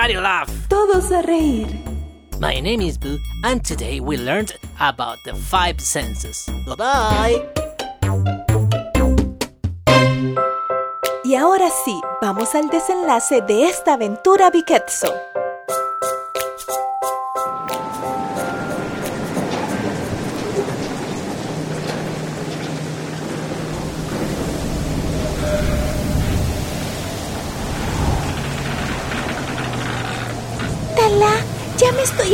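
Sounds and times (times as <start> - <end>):
speech: 0.1 - 7.6, 11.3 - 15.8, 32.0 - 32.3
short burst of musical tones: 0.8 - 27.4
deep rumbles of thunder: 17.5 - 32.3
heavy rain: 17.8 - 32.3.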